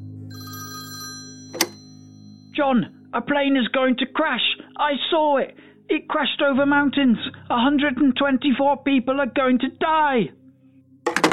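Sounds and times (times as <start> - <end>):
telephone ringing: 0.4 - 2.2, 11.1 - 11.3
speech: 2.6 - 10.4.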